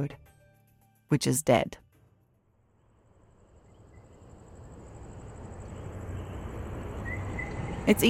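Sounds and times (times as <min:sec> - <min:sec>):
speech: 0:00.0 - 0:00.3, 0:01.1 - 0:01.8, 0:07.9 - 0:08.0
frogs chirping at night: 0:03.0 - 0:08.0.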